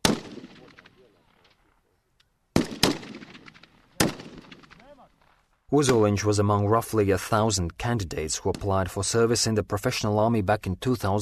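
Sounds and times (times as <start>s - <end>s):
Kalashnikov rifle gunfire from army cadets shooting at a target: 0.0s - 1.5s, 2.5s - 5.3s
speech: 5.7s - 11.2s.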